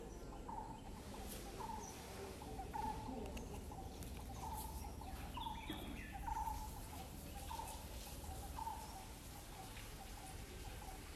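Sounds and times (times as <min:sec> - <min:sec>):
white-cheeked barbet calling: 0:00.4 - 0:11.0.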